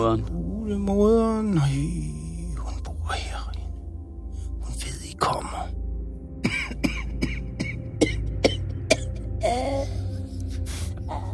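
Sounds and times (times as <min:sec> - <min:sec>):
speech: 0:00.0 - 0:02.1
low steady hum: 0:00.0 - 0:11.3
person clearing throat: 0:06.4 - 0:09.8
person coughing raspily: 0:06.4 - 0:10.3.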